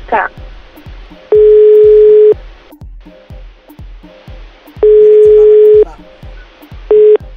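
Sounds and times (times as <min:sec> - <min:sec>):
soft steady rhythmic pulse: 0:00.0 - 0:02.6, 0:04.1 - 0:07.3
ringback tone of an unanswered telephone call: 0:01.3 - 0:02.4, 0:04.8 - 0:05.8, 0:06.9 - 0:07.2.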